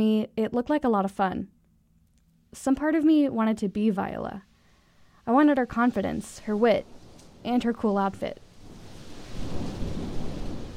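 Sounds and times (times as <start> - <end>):
speech: 0.0 - 1.6, 2.5 - 4.5, 5.3 - 8.4
heavy rain pouring: 5.3 - 10.7
deep thunder rumbling: 5.5 - 10.7.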